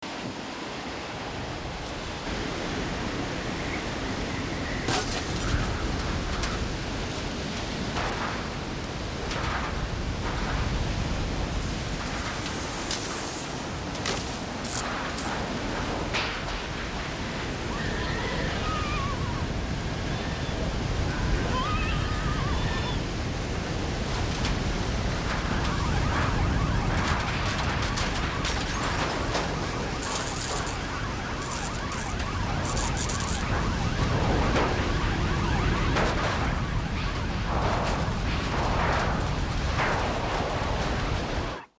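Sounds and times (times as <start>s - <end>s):
storm: 0.0s - 41.7s
rain on corrugated iron: 0.1s - 41.6s
electric shock: 4.6s - 17.1s, 24.0s - 41.6s.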